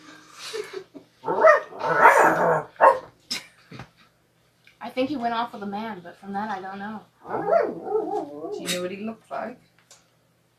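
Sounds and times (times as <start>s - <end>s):
dog barking at a closet door: 1.2s - 3.1s, 7.2s - 8.7s
speech: 5.0s - 9.7s.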